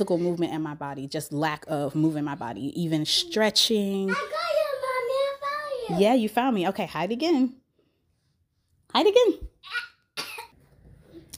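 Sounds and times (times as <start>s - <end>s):
speech: 0.0s - 4.5s, 5.9s - 7.6s, 8.9s - 9.9s
child giving forced coughs: 9.7s - 10.6s.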